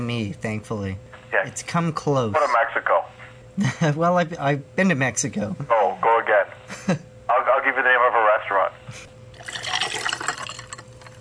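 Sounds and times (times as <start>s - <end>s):
speech: 0.0s - 7.1s, 7.7s - 9.1s
rum pouring into a glass: 9.3s - 11.1s.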